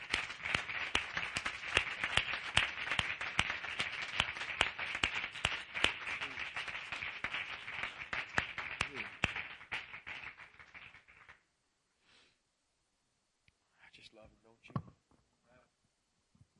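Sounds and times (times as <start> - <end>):
audience applause: 0.0 - 11.4.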